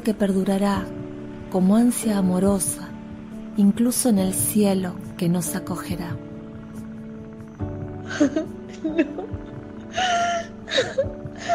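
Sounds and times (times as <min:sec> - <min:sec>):
speech: 0:00.0 - 0:02.9, 0:03.6 - 0:06.2, 0:08.2 - 0:11.5
woman sobbing loudly with gasping breaths and wailing cries: 0:08.1 - 0:11.5.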